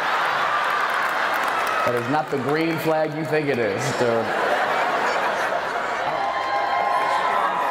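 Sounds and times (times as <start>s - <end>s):
large crowd roaring and cheering: 0.0s - 7.6s
speech: 1.8s - 4.5s
scattered laughter: 4.0s - 6.2s.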